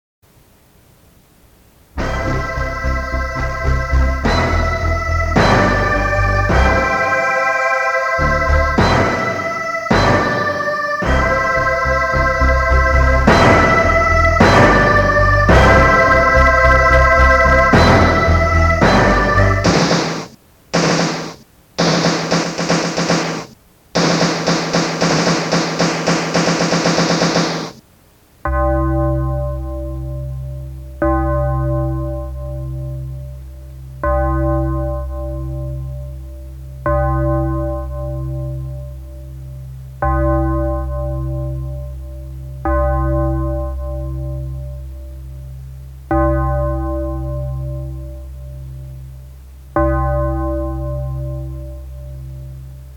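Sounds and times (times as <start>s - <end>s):
synthesized anthem: 2.0s - 27.8s, 28.4s - 52.9s.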